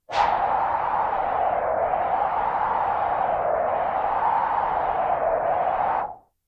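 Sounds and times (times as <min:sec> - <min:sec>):
high wind: 0:00.0 - 0:06.3.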